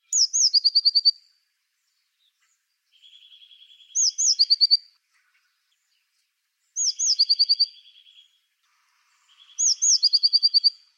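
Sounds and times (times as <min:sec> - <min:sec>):
blue tit calling: 0:00.0 - 0:01.2, 0:02.4 - 0:05.5, 0:06.8 - 0:08.4, 0:09.1 - 0:10.9.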